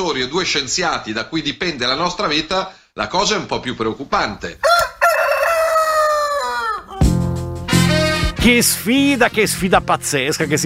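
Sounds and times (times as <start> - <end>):
speech: 0.0 - 4.8, 8.4 - 10.6
rooster crowing: 4.6 - 7.2.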